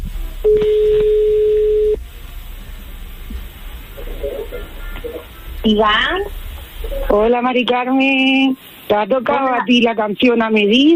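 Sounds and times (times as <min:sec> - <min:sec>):
low rumble: 0:00.0 - 0:09.3
faint murmur: 0:00.0 - 0:09.8
telephone ringing tone on an outgoing call: 0:00.4 - 0:02.0
speech: 0:05.7 - 0:06.4, 0:07.1 - 0:10.9.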